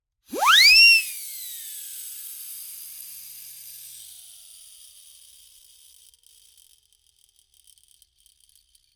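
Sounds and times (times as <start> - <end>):
slapstick comedy siren whistle: 0.3 - 1.3.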